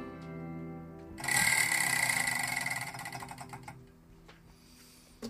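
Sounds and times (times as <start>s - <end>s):
spinning prize wheel ticking: 1.2s - 3.8s.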